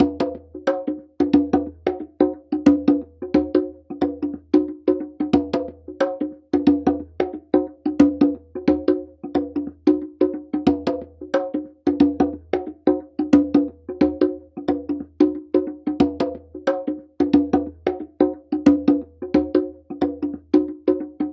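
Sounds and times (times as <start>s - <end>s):
hip hop conga beat: 0.0s - 21.3s.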